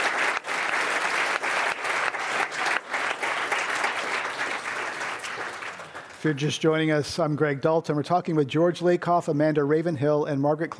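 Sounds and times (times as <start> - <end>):
audience applause: 0.0 - 6.5
speech: 6.2 - 10.7.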